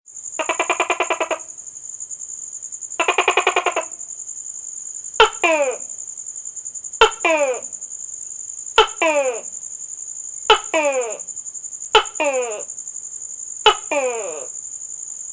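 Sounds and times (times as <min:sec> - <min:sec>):
gecko calls: 0:00.4 - 0:01.6, 0:03.0 - 0:04.1, 0:05.2 - 0:05.9, 0:07.0 - 0:07.8, 0:08.8 - 0:09.6, 0:10.4 - 0:12.7, 0:13.6 - 0:14.6.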